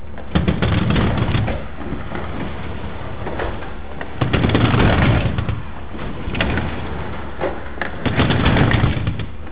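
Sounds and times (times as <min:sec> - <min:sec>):
dry torsion springs of garage doors: 0:00.2 - 0:09.5.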